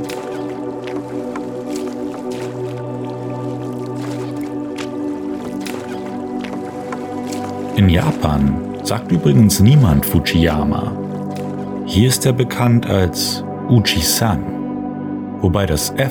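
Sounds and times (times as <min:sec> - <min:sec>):
rowing boat oars splashing in lake water near Mount Fuji in Japan: 0:00.0 - 0:12.8
speech: 0:07.8 - 0:11.0, 0:11.9 - 0:14.6, 0:15.4 - 0:16.1.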